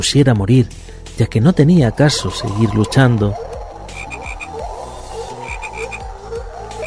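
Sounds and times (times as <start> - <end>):
speech: 0.0 - 3.5
dense chorus of frogs croaking: 1.5 - 6.8.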